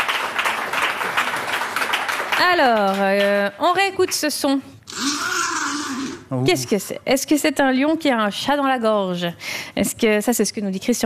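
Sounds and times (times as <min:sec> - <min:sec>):
many hands clapping: 0:00.0 - 0:04.2
speech: 0:02.4 - 0:11.0.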